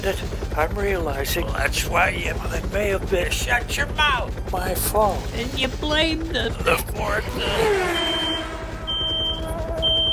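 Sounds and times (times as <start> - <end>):
speech: 0.0 - 8.0
continuous low engine-like rumble: 0.0 - 10.1
pocket radar detector beeping in high-pitched tones: 7.3 - 10.1.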